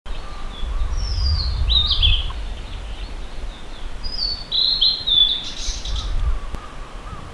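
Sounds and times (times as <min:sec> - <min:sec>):
Blue-and-white flycatcher singing: 0:00.1 - 0:07.2
low rumbling noise: 0:00.1 - 0:07.2.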